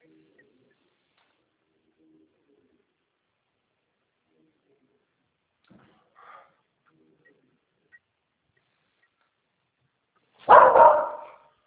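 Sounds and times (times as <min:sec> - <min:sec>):
pet dog barking: 0:10.4 - 0:11.5.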